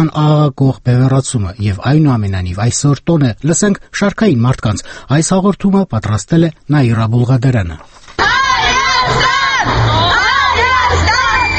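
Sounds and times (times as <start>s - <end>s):
speech: 0.0s - 8.3s
dense holiday crowd in busy central streets of Yerevan: 8.2s - 11.5s
people shouting and cheering: 8.2s - 11.5s.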